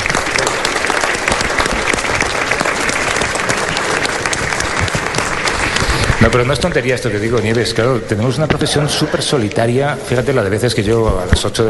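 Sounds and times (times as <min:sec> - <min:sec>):
steady audience applause: 0:00.0 - 0:07.8
speech: 0:06.2 - 0:11.6.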